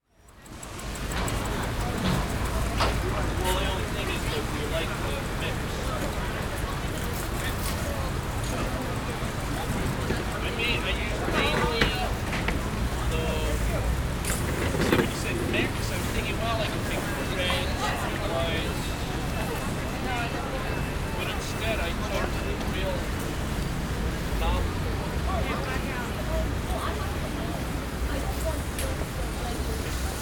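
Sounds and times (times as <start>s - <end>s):
outdoor market ambience: 0.0s - 30.2s.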